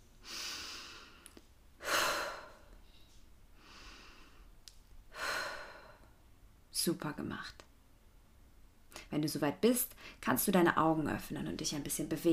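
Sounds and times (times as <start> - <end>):
deep breathing in and out during a guided relaxation exercise: 0.2 - 6.2
speech: 6.8 - 7.7, 9.1 - 12.3.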